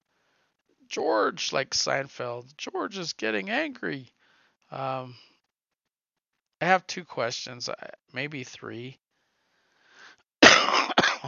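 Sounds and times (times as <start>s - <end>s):
speech: 0.9s - 5.3s, 6.6s - 9.0s
man coughing from a lingering cough: 10.4s - 11.2s.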